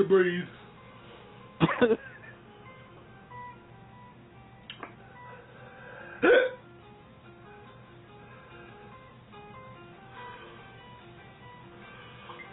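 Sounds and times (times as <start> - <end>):
speech: 0.0 - 0.6, 1.6 - 2.1, 6.2 - 6.6
quiet breathing: 0.8 - 1.6, 5.0 - 6.2, 8.1 - 9.1, 10.1 - 11.0, 11.6 - 12.5
hiccups: 6.2 - 6.6.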